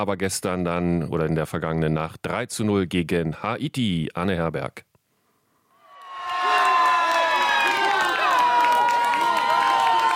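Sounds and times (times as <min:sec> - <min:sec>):
speech: 0:00.0 - 0:04.9
fans screaming and cheering a goal: 0:05.8 - 0:10.1
high-pitched shrieks and whoops: 0:05.8 - 0:10.1.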